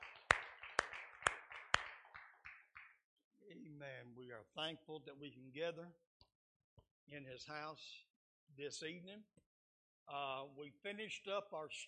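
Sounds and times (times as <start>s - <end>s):
audience clapping in unison: 0.0s - 3.0s
speech: 3.8s - 6.1s, 7.1s - 9.5s, 10.1s - 11.8s.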